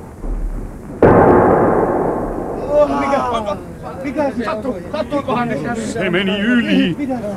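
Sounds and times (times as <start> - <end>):
faint creaking tones: 0.0 - 3.8
brief low rumble: 0.0 - 4.1
harpoon cannon firing: 0.0 - 4.2
speech: 4.1 - 7.3.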